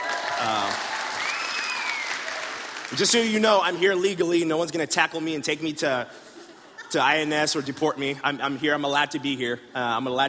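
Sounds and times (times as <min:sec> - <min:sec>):
audience applause at a talk: 0:00.0 - 0:03.8
speech: 0:02.9 - 0:06.3, 0:06.9 - 0:10.2.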